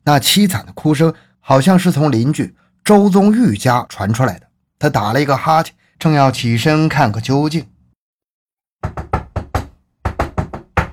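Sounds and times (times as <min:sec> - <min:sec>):
speech: 0:00.0 - 0:07.7, 0:08.8 - 0:09.0
rapid urgent knocking on a door: 0:08.8 - 0:10.9.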